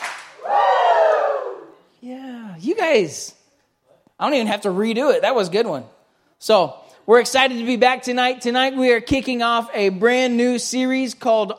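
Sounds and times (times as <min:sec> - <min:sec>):
crowd clapping: 0:00.0 - 0:01.2
crowd cheering woo: 0:00.0 - 0:01.9
speech: 0:02.7 - 0:03.4, 0:04.2 - 0:11.5.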